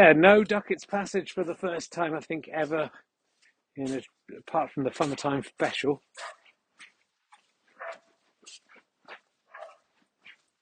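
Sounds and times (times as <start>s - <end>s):
speech: 0.0s - 3.1s, 3.8s - 6.4s
locked-up dog barking: 6.2s - 6.5s, 7.8s - 8.1s, 9.5s - 9.9s.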